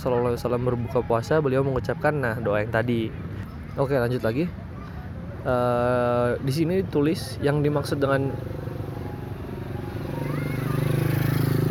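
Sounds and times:
speech: 0.0s - 4.6s, 5.4s - 8.7s
motorcycle passing: 7.6s - 11.7s.

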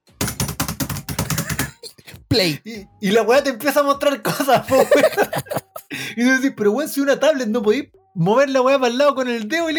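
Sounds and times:
mouth imitating frantic typing on a roll-up keyboard: 0.1s - 2.2s
speech: 2.3s - 9.7s
laughter: 4.3s - 5.9s.

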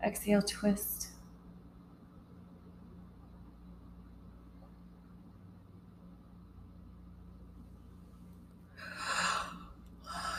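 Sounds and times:
speech: 0.0s - 1.1s
faint low hum: 0.0s - 10.3s
person yawning during a guided seated yoga session: 8.8s - 10.3s.

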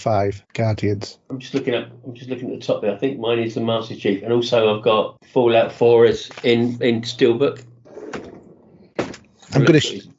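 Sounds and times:
speech: 0.0s - 8.3s, 9.5s - 10.1s
drawer being pulled open: 7.9s - 8.6s.

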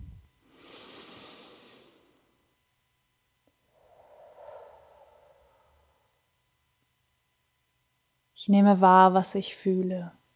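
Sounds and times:
quiet airy breaths during a guided meditation: 0.0s - 2.6s, 3.2s - 7.7s
speech: 8.4s - 10.2s.

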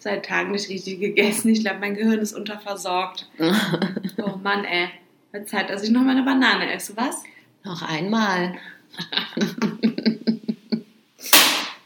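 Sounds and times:
speech: 0.0s - 9.7s
person laughing: 3.4s - 4.4s, 9.0s - 11.4s.

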